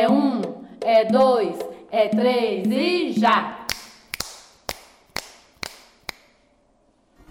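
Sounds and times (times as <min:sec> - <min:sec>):
speech: 0:00.9 - 0:03.6
finger snapping: 0:03.7 - 0:06.4.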